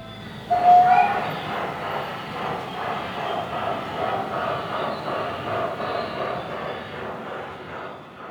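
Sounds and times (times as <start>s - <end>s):
whistle-like tone: 0.0s - 1.4s
gauge 2 model train running on track in a railway museum in the Black Forest: 0.0s - 8.2s.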